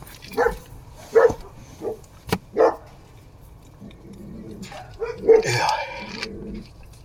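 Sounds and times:
small dog guarding the house barking in short sharp yaps: 0:00.3 - 0:02.9, 0:04.8 - 0:05.6.

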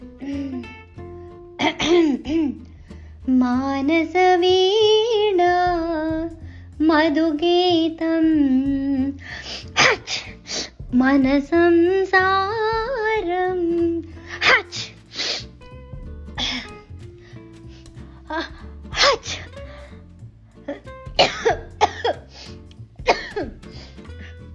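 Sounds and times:
person with a cold coughing and sneezing: 0:01.6 - 0:02.6, 0:09.8 - 0:10.3, 0:18.4 - 0:19.6, 0:21.2 - 0:22.3, 0:23.0 - 0:23.6
speech: 0:01.6 - 0:02.7, 0:03.3 - 0:10.0, 0:11.0 - 0:14.6.

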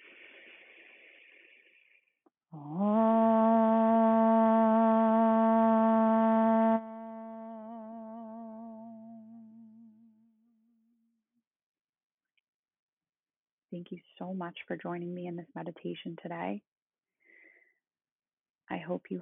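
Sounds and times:
person inhaling audibly before chanting: 0:00.0 - 0:02.1, 0:17.2 - 0:17.7
person chanting a resounding om in meditation: 0:02.6 - 0:10.2
speech: 0:13.9 - 0:16.7, 0:18.9 - 0:19.1.

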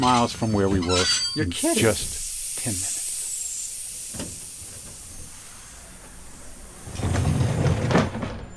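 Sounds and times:
speech: 0:00.0 - 0:03.0
train clanking: 0:00.8 - 0:08.5
train steam hissing in a station in Chicago: 0:01.5 - 0:08.5
train low mechanical rumble: 0:01.7 - 0:08.5.

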